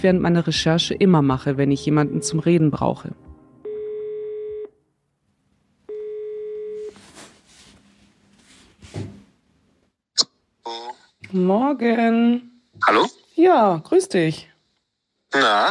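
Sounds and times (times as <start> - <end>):
speech: 0.0 - 3.2, 11.3 - 14.5, 15.3 - 15.7
long steady telephone ringback tones: 3.6 - 4.7, 5.9 - 6.9
rustling handling noise: 6.8 - 9.3.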